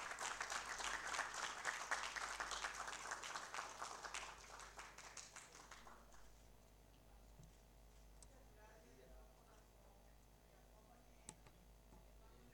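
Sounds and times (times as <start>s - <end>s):
large crowd applauding: 0.0s - 6.3s.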